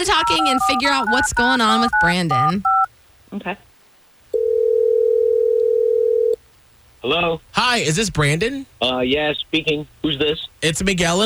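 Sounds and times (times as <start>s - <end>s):
speech: 0.0s - 3.7s, 7.0s - 11.2s
steady loud telephone dial tone: 0.2s - 2.9s, 4.4s - 6.4s.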